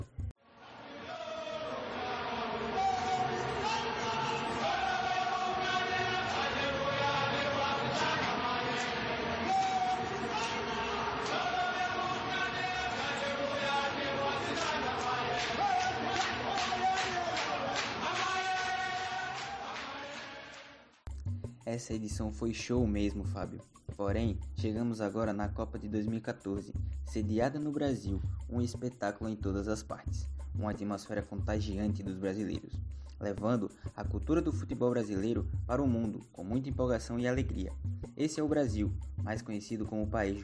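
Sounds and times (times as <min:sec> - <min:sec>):
South African football fans chanting and singing in unison: 0:00.6 - 0:20.9
speech: 0:21.7 - 0:40.4.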